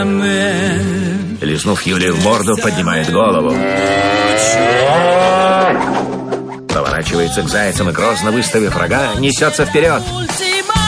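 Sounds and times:
speech: 0.0s - 0.8s, 1.4s - 6.2s, 7.0s - 10.6s
cow mooing: 3.5s - 6.3s.

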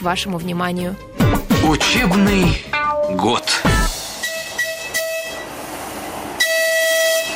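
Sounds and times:
speech: 0.0s - 3.9s
small electric-locomotive train arriving at station: 3.1s - 7.3s
high train whistle or horn toots: 3.9s - 5.6s, 6.4s - 7.3s.

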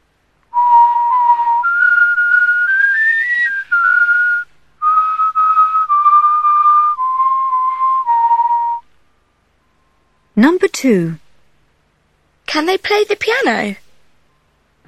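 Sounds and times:
person whistling a simple tune: 0.5s - 8.9s
speech: 10.4s - 11.2s, 12.6s - 13.8s.

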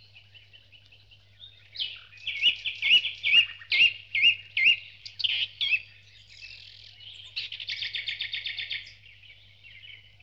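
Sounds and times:
dawn chorus of birds singing: 0.0s - 10.2s.

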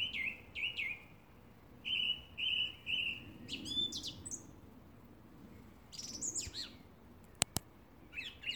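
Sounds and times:
song thrush song with repeated whistled and scratchy phrases: 0.0s - 1.2s, 1.8s - 4.6s, 5.9s - 8.5s
sharp click: 7.3s - 7.7s.

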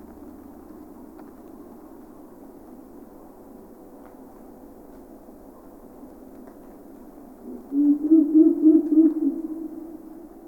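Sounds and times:
Ural owl giving a deep wavering hoot: 7.5s - 9.9s.

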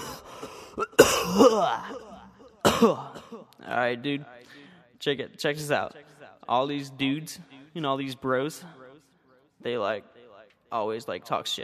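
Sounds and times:
person coughing harshly: 0.6s - 3.5s
person clearing throat: 0.8s - 3.6s
speech: 1.4s - 2.1s, 2.8s - 8.8s, 9.6s - 10.1s, 10.7s - 11.6s.

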